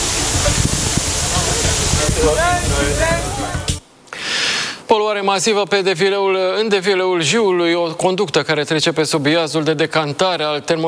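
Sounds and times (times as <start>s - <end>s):
water cannon spraying water: 0.0s - 3.8s
speech: 4.9s - 10.8s.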